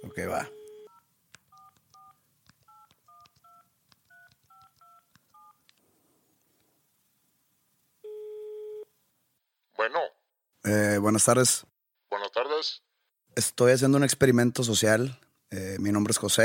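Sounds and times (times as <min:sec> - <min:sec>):
speech: 0:00.0 - 0:00.6, 0:09.8 - 0:11.7, 0:12.4 - 0:16.4
single longer steady telephone tone: 0:00.0 - 0:05.6, 0:08.0 - 0:08.9
telephone number dialled on a touch-tone keypad: 0:00.0 - 0:05.6.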